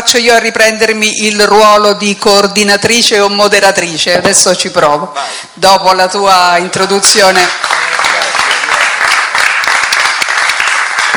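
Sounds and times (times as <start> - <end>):
speech: 0.1 - 7.8
audience applause: 7.5 - 11.1.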